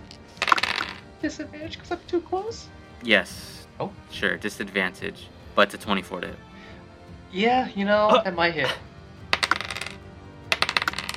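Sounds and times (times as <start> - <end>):
two dice clattering across a hard tabletop: 0.1 - 1.1, 9.3 - 11.1
speech: 1.2 - 6.5, 7.3 - 8.9.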